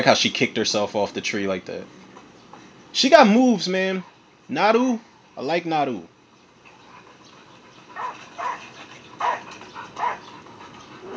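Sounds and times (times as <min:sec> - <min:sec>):
speech: 0:00.0 - 0:02.0, 0:02.9 - 0:06.1
low hiss: 0:00.0 - 0:11.1
dog barking and whimpering in short yelps: 0:08.0 - 0:11.1.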